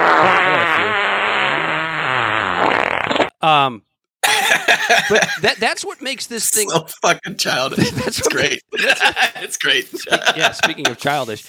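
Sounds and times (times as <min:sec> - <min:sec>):
fart sound effect: 0:00.0 - 0:03.4
speech: 0:03.4 - 0:11.4
laughter: 0:04.2 - 0:11.3.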